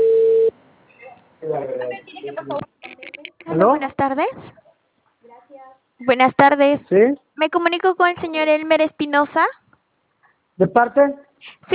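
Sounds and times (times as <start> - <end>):
telephone ringing tone while placing a call: 0.0 - 0.5
speech: 2.4 - 2.7, 3.6 - 4.6, 5.5 - 9.6, 10.6 - 11.7.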